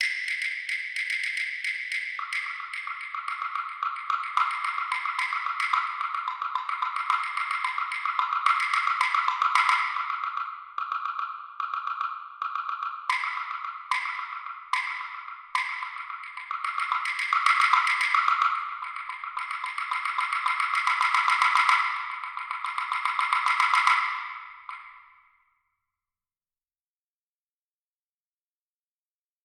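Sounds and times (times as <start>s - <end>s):
percussion composition exercise: 0.0s - 25.3s.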